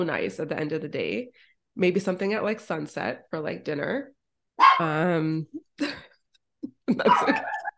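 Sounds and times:
speech: 0.0s - 4.2s, 4.8s - 6.1s, 6.9s - 7.6s
dog barking: 4.6s - 4.8s, 7.1s - 7.7s.

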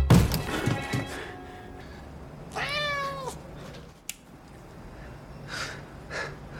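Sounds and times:
heavy thumps: 0.1s - 1.1s
cat meowing: 2.5s - 3.4s.

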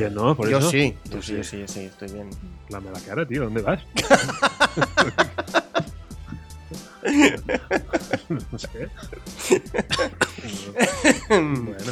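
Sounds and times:
speech: 0.0s - 5.6s, 7.1s - 11.9s
laughter: 4.0s - 11.9s
person coughing: 9.4s - 11.4s.

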